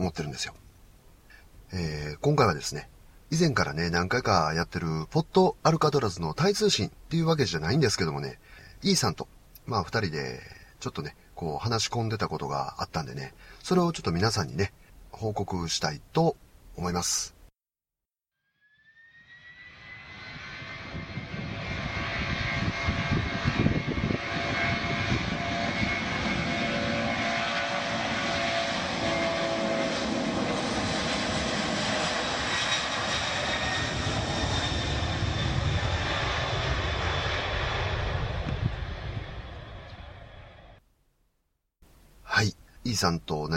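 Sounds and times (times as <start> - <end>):
speech: 0.0 - 0.7, 1.7 - 17.4, 42.4 - 43.5
aircraft engine roar at an airport: 18.8 - 40.8.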